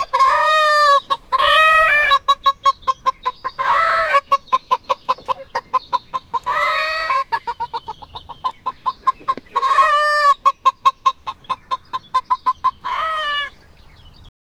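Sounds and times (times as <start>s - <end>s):
chickens on a chicken farm: 0.0s - 14.3s.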